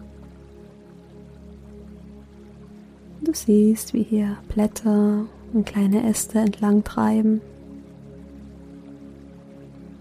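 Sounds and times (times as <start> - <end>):
small river babbling: 0.0 - 10.0
speech: 3.2 - 7.5.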